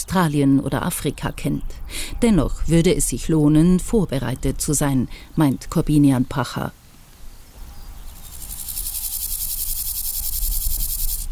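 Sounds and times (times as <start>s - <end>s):
speech: 0.1s - 6.8s
grasshoppers chirping on a former taxiway: 7.4s - 11.2s.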